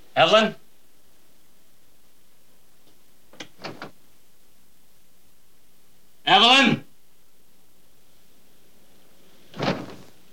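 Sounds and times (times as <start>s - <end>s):
speech: 0.2s - 0.6s, 6.3s - 6.8s
door being barged open: 3.4s - 4.0s.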